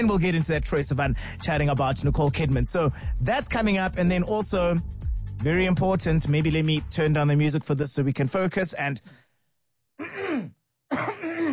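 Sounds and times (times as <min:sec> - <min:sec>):
speech: 0:00.0 - 0:09.2
throat clearing: 0:10.0 - 0:11.5.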